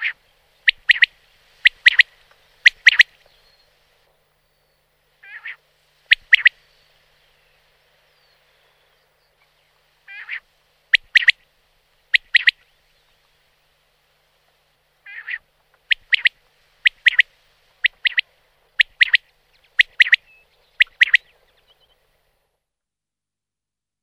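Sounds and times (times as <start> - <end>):
common quail calling: 0.0 - 3.2, 5.2 - 6.7, 10.0 - 11.4, 12.1 - 12.6, 15.0 - 21.8.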